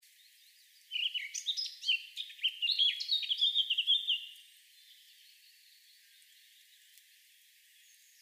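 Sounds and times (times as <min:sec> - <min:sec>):
Eurasian blackcap warbling song: 0:00.1 - 0:08.2.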